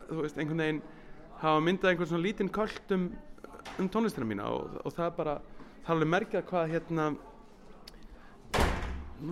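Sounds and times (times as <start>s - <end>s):
speech: 0.1s - 7.3s
door slamming shut: 8.5s - 9.2s.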